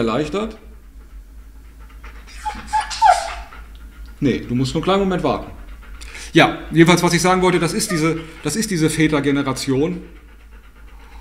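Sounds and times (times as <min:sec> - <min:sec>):
speech: 0:00.0 - 0:00.7, 0:04.2 - 0:05.6, 0:06.3 - 0:10.2
dog panting: 0:00.0 - 0:11.1
dog whimpering: 0:01.7 - 0:04.2, 0:04.9 - 0:10.2.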